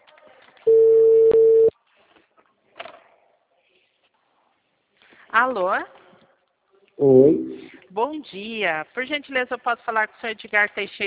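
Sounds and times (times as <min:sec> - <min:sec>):
faint noise: 0:00.0 - 0:11.0
telephone ringback tone while a call is placed: 0:00.7 - 0:01.7
speech: 0:05.4 - 0:06.0, 0:07.0 - 0:11.0.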